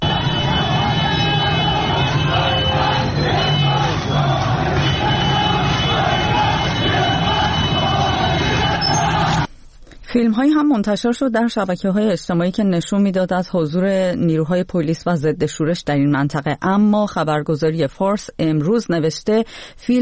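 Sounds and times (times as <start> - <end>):
street protest crowd shouting outdoors: 0.0 - 9.5
speech: 10.2 - 19.9.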